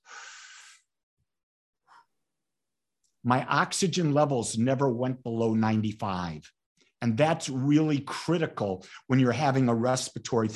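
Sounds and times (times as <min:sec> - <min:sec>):
strong breathy inhale: 0:00.0 - 0:01.0
speech: 0:03.2 - 0:10.5.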